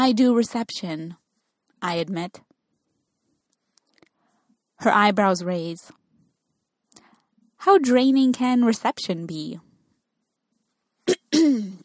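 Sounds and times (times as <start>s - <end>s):
speech: 0.0s - 1.2s, 1.8s - 2.5s, 4.8s - 6.0s, 7.6s - 9.7s, 11.3s - 11.8s
person clearing throat: 11.1s - 11.8s.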